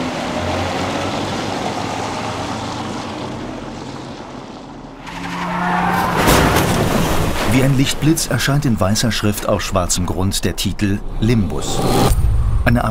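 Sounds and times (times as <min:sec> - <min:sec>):
car pulling away in the darkness: 0:00.0 - 0:12.8
speech: 0:07.6 - 0:12.8.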